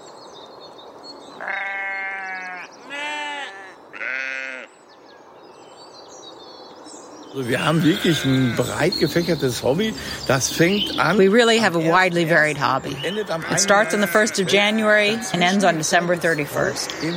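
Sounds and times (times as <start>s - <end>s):
sheep bleating in a meadow with forest: 1.4s - 4.7s, 7.4s - 9.0s, 13.2s - 15.8s
speech: 7.4s - 17.1s.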